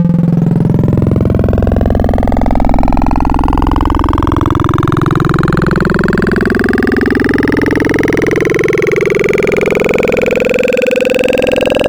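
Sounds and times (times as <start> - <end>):
triangle formant wavetable synth tone: 0.0 - 11.8.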